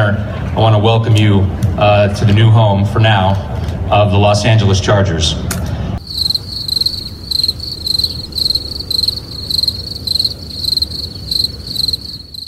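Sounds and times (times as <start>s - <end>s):
speech: 0.1s - 5.6s
crickets chirping in a shrill trill: 6.0s - 12.4s.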